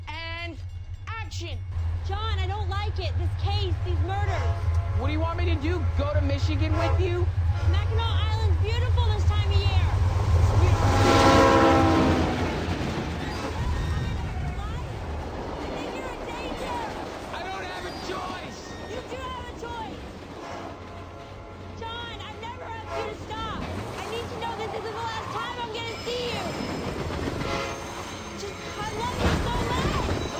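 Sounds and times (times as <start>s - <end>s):
speech: 1.3s - 11.3s
train rumbling past: 1.6s - 30.3s
train horn blast: 4.1s - 8.4s, 9.8s - 12.8s, 20.4s - 25.0s, 27.2s - 28.8s.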